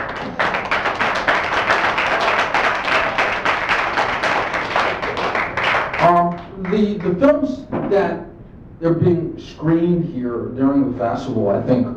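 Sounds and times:
audience applause at a small film festival screening: 0:00.0 - 0:07.2
speech: 0:06.8 - 0:11.9.

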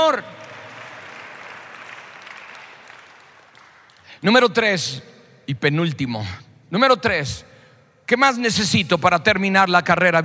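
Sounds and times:
audience applause at a church service: 0:00.0 - 0:04.1
speech: 0:00.1 - 0:00.4, 0:04.2 - 0:07.5, 0:08.1 - 0:10.2.

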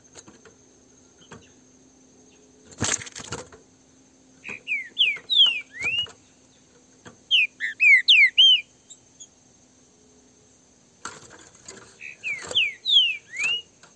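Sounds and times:
wild green-winged saltator song: 0:04.4 - 0:06.2, 0:07.3 - 0:09.0, 0:12.0 - 0:13.8.

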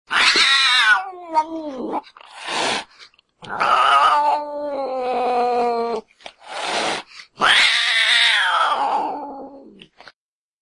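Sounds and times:
domestic cat giving a drawn-out meow: 0:00.1 - 0:02.0, 0:03.4 - 0:06.0, 0:07.4 - 0:09.8.

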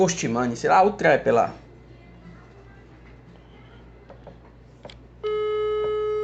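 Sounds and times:
speech: 0:00.0 - 0:01.6
faint low hum: 0:00.0 - 0:06.2
telephone ringing tone while calling a friend: 0:05.2 - 0:06.2.

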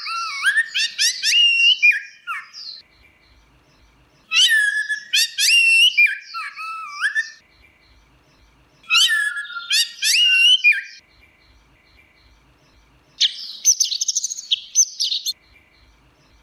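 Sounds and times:
Orange-headed thrush singing loud whistled phrases: 0:00.0 - 0:02.8, 0:04.3 - 0:07.4, 0:08.8 - 0:11.0, 0:13.2 - 0:15.4.

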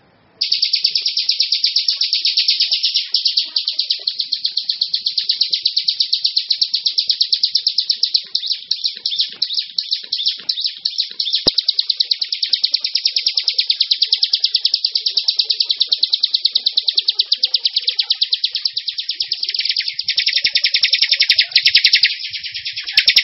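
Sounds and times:
bar-winged prinia giving a high rattling trill: 0:00.4 - 0:23.2
sharp click: 0:10.0 - 0:11.6.

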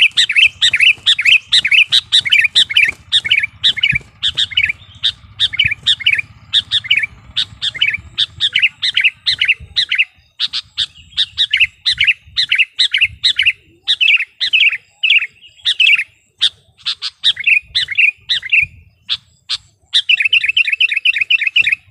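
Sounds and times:
low steady hum: 0:00.0 - 0:10.3
Sooty-headed bulbul song: 0:00.0 - 0:21.8.

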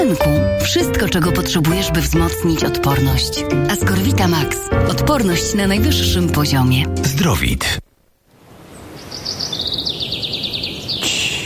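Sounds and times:
speech: 0:00.1 - 0:07.9
birdsong from an art exhibition soundscape: 0:08.6 - 0:11.4.

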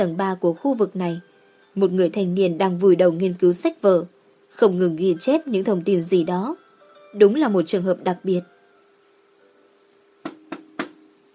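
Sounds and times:
speech: 0:00.0 - 0:08.5
knocking on a door: 0:10.2 - 0:11.0.

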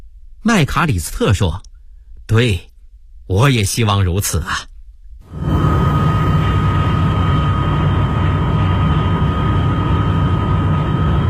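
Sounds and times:
speech: 0:00.4 - 0:01.7, 0:02.3 - 0:02.7, 0:03.3 - 0:04.7
airplane slowly landing at Beijing Capital International Airport: 0:05.3 - 0:11.2.

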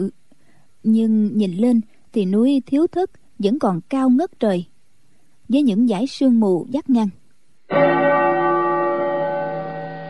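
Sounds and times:
speech: 0:00.0 - 0:00.2, 0:00.8 - 0:04.7, 0:05.5 - 0:08.0
temple bell ringing from the monastery below in the mountains: 0:07.7 - 0:10.0.

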